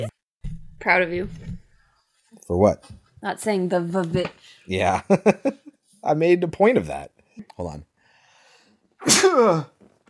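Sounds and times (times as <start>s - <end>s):
speech: 0.8s - 1.5s, 2.5s - 7.9s, 9.0s - 9.7s
person sneezing: 9.0s - 9.8s.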